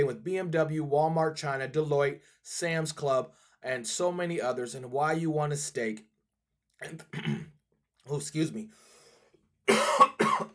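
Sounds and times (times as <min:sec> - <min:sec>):
speech: 0:00.0 - 0:06.1, 0:06.8 - 0:08.8
coughs in quick pairs: 0:06.9 - 0:07.6, 0:09.7 - 0:10.5.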